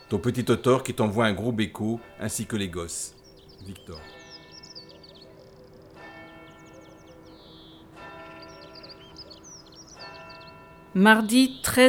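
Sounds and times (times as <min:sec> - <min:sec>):
birds chirping: 0:00.0 - 0:11.8
church bell striking noon: 0:00.0 - 0:11.8
speech: 0:00.1 - 0:04.2, 0:10.9 - 0:11.8.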